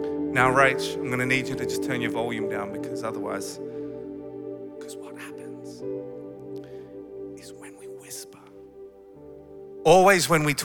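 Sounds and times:
speech: 0.4 - 3.7, 9.8 - 10.6
person whispering: 7.4 - 8.6.

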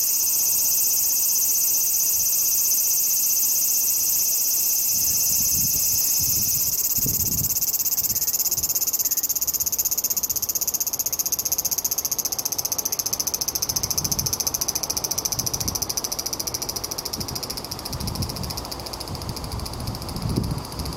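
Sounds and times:
large brown cicada sizzling buzz: 0.0 - 20.9.

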